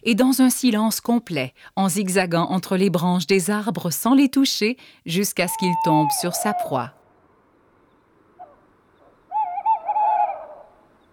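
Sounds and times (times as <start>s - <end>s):
speech: 0.0s - 7.0s
male tawny owl hooting: 5.5s - 7.0s, 8.4s - 11.1s.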